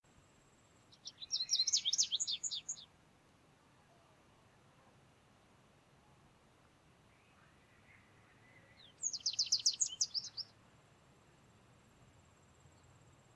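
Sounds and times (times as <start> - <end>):
American Goldfinch Carduelis tristis twittering: 0.9 - 2.8, 9.0 - 10.5.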